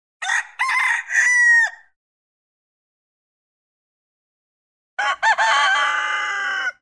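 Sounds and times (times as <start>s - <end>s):
rooster: 0.2s - 2.0s, 5.0s - 6.8s.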